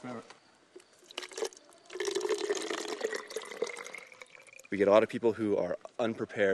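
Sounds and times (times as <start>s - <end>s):
speech: 0.0s - 0.4s, 4.7s - 6.5s
water poured into a bottle on the Bright Angel Trail below the rim: 1.0s - 4.8s.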